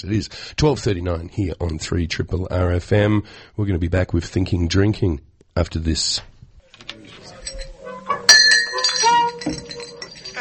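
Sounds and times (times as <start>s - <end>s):
speech: 0.0s - 6.3s
glasses clinking: 7.0s - 10.3s.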